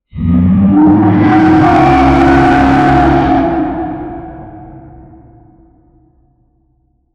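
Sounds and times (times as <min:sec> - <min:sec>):
thunderous demonic roar: 0:00.1 - 0:06.0.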